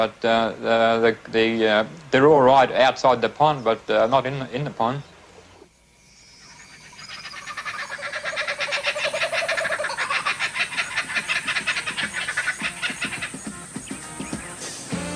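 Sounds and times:
speech: 0:00.0 - 0:05.1
cane toads croaking in chorus: 0:05.3 - 0:14.9.

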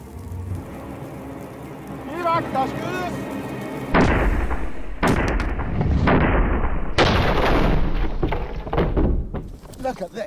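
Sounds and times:
speech: 0:02.4 - 0:03.3, 0:09.9 - 0:10.2
crashing bursts of noise: 0:03.9 - 0:09.6
medieval breech-loading cannon loaded with gunpowder firing: 0:04.0 - 0:09.4.

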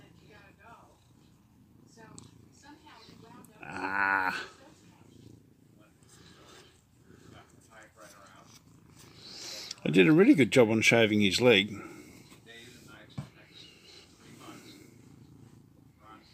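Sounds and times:
cat purring: 0:00.0 - 0:16.3
speech: 0:10.0 - 0:11.9.

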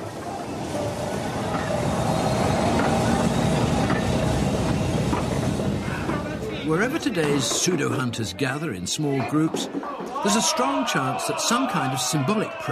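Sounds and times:
railway train rolling along the tracks: 0:00.0 - 0:08.0
speech: 0:06.8 - 0:12.7.

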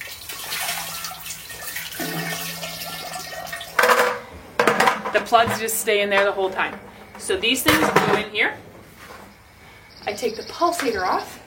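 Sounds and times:
water rinsing a washing machine lid: 0:00.0 - 0:05.1
speech: 0:05.2 - 0:08.7, 0:10.0 - 0:11.4.

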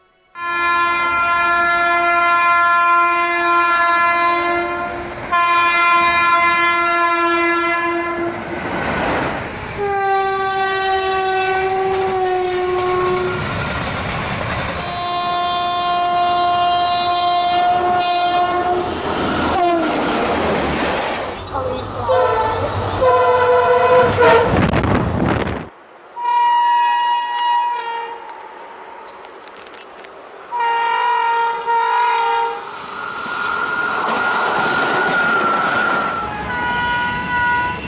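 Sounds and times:
train rumbling: 0:00.0 - 0:37.8
train horn blasts: 0:00.1 - 0:08.4, 0:09.8 - 0:13.5, 0:14.8 - 0:20.0, 0:21.6 - 0:24.8, 0:26.2 - 0:28.5, 0:30.5 - 0:32.7, 0:35.1 - 0:37.8.

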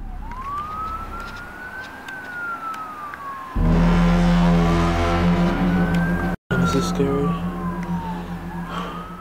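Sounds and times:
police siren wailing in a city: 0:00.0 - 0:09.2
loud low droning bass-heavy horn outside an apartment: 0:03.5 - 0:09.2.

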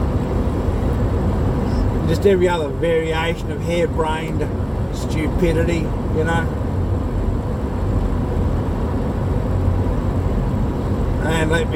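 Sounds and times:
broad roar of road noise from fuel truck: 0:00.0 - 0:11.7
large double-trailer fuel truck engine rumble: 0:00.0 - 0:11.7
speech: 0:02.1 - 0:06.6, 0:11.2 - 0:11.7.

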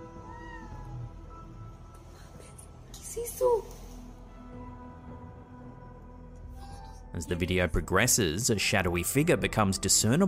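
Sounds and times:
drawn-out plaintive cat-like meow: 0:00.0 - 0:01.5
speech: 0:03.2 - 0:03.8, 0:07.2 - 0:10.2.

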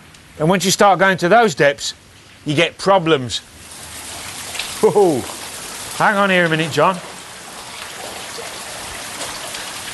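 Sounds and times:
speech: 0:00.4 - 0:03.5, 0:04.8 - 0:05.4, 0:06.0 - 0:07.1
water dripping from rock in a mine: 0:03.6 - 0:09.9.

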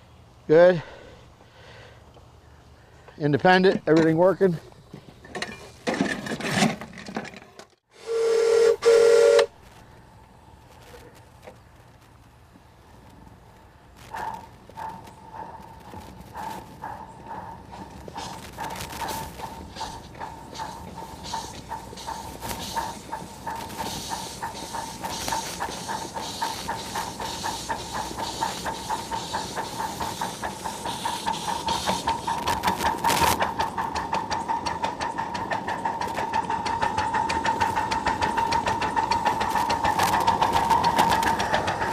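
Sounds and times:
speech: 0:00.5 - 0:00.9, 0:03.2 - 0:04.8
steam train whistle blast: 0:08.0 - 0:09.6
steam train hissing steam during a brake test in the rain: 0:14.1 - 0:41.9
steam train brake rhythmic pumping pulses: 0:14.2 - 0:41.9.

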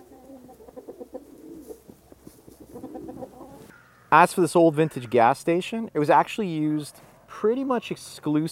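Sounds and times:
pigeons cooing: 0:00.0 - 0:03.8
speech: 0:04.1 - 0:08.4.

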